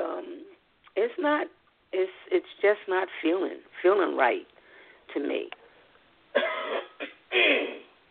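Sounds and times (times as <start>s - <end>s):
speech: 1.0s - 4.5s, 5.1s - 5.6s
person with irritated throat clearing throat: 6.4s - 7.9s.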